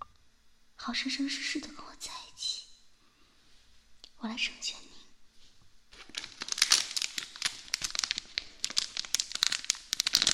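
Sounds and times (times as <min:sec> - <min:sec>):
speech: 0:00.8 - 0:02.2, 0:04.2 - 0:04.9
plastic bag crinkling: 0:05.9 - 0:10.3.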